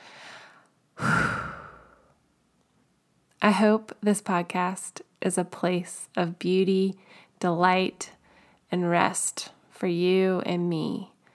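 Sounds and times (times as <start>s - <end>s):
deep breath: 0.0s - 2.2s, 7.0s - 7.4s
speech: 3.4s - 11.1s.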